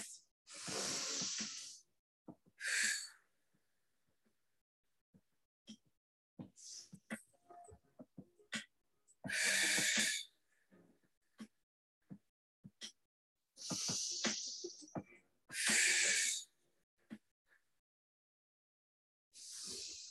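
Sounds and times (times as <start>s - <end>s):
quickened breathing in through nose and out through mouth: 0.0s - 1.8s, 9.3s - 10.3s, 13.6s - 14.8s, 15.5s - 16.5s, 19.4s - 20.0s.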